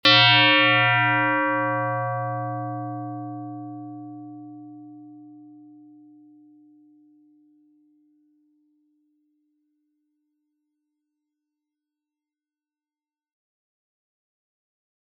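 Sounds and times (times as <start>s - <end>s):
FM synthesized bell: 0.1s - 7.8s.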